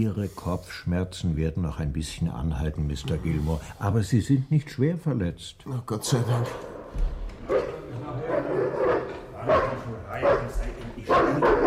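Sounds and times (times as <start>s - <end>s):
speech: 0.0s - 7.6s
bloodhound barking and baying: 6.7s - 11.6s.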